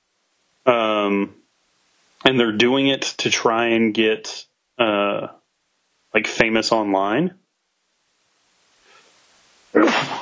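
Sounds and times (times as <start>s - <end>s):
speech: 0.7s - 1.4s, 2.2s - 5.4s, 6.1s - 7.4s
person sneezing: 9.8s - 10.2s.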